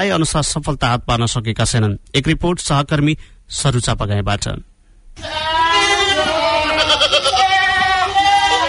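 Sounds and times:
speech: 0.0s - 5.5s
improved-breed goats bleating on a farm: 5.2s - 8.6s.

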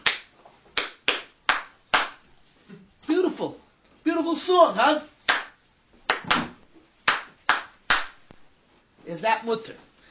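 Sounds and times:
sharp hand claps: 0.0s - 2.2s, 5.3s - 8.4s
speech: 3.4s - 3.6s, 4.2s - 5.1s, 9.2s - 9.9s.

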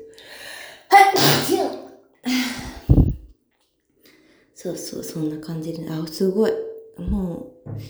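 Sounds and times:
person sneezing: 0.9s - 3.3s
speech: 4.6s - 7.8s.

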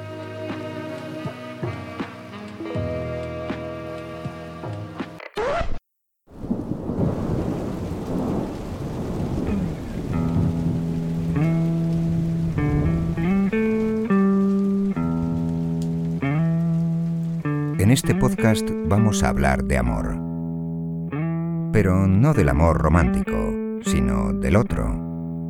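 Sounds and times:
gentle melodic music: 0.0s - 5.2s, 10.3s - 25.4s
steady hissing rain: 0.1s - 4.6s, 6.3s - 19.9s
loud crack of thunder: 6.3s - 13.3s
speech: 17.9s - 20.2s, 21.8s - 25.0s.

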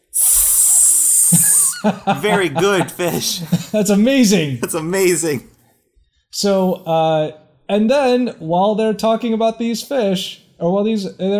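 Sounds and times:
voice imitating a snake's hiss: 0.0s - 1.9s
laughter: 1.3s - 5.4s
speech: 1.8s - 5.6s, 6.4s - 11.3s.

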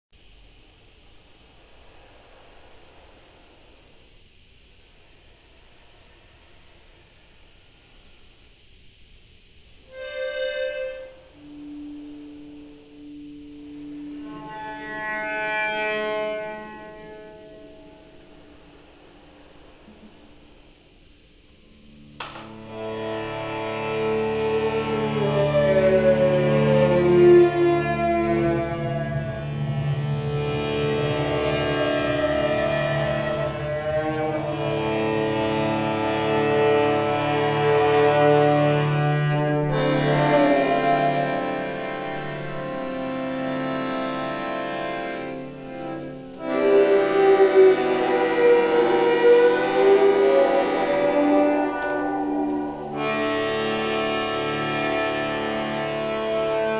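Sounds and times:
accordion playing: 9.9s - 19.0s, 22.0s - 56.7s.

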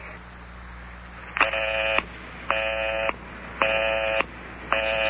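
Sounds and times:
telephone dialing tones: 1.4s - 5.0s.

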